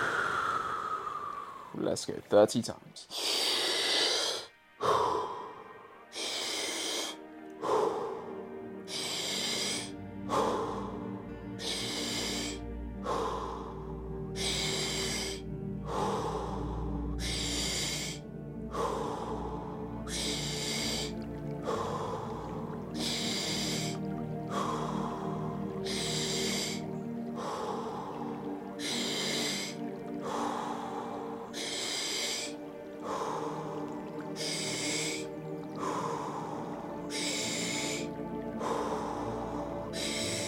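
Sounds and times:
deep breaths in and out through the mouth during a guided breathing exercise: 0.0s - 1.8s, 3.1s - 40.4s
speech: 1.8s - 3.6s.

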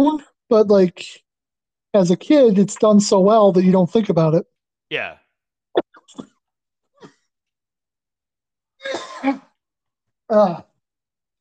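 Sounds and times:
speech: 0.0s - 1.2s, 2.0s - 5.2s, 8.8s - 9.5s, 10.3s - 10.7s
person coughing: 8.8s - 9.5s.

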